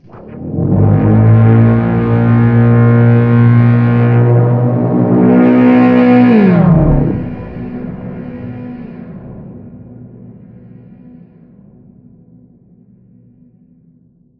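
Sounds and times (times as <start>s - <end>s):
cables pulse layer: 0.0s - 9.6s.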